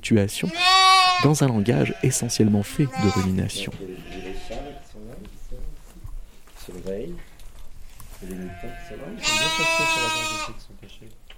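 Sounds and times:
speech: 0.0s - 4.3s, 8.2s - 11.3s
young sheep bleating: 0.4s - 5.0s, 8.2s - 10.6s.

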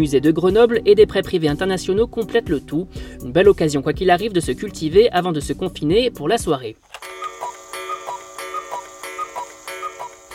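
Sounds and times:
speech: 0.0s - 7.1s
clock ticking: 7.0s - 10.3s.

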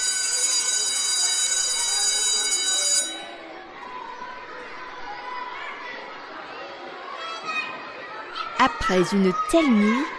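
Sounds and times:
electric school bell ringing: 0.0s - 3.6s
children chattering and moving around in a busy room: 0.0s - 10.1s
speech: 8.6s - 10.1s.

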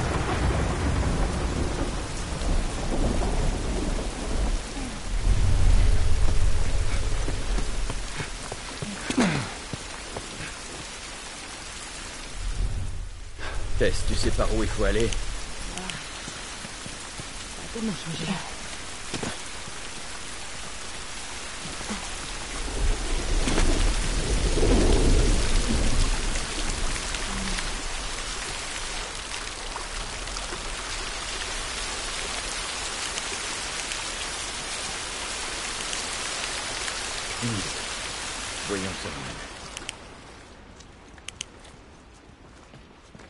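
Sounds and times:
distant thunder rumble: 0.0s - 8.5s, 12.1s - 31.3s
steady rain: 0.0s - 43.2s
speech: 13.8s - 15.3s, 17.8s - 18.6s.

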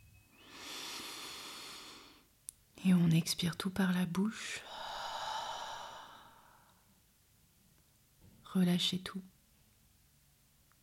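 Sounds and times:
deep inhalation through the nose during a guided breathing exercise: 0.4s - 2.3s, 4.6s - 6.8s
speech: 2.8s - 4.7s, 8.5s - 9.4s.

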